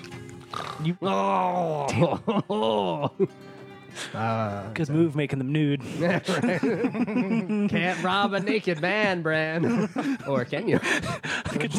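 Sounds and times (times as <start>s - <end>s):
person imitating heavy snoring with their voice: 0.5s - 1.0s
speech: 0.8s - 11.7s
laughter: 1.7s - 3.4s, 5.8s - 11.7s.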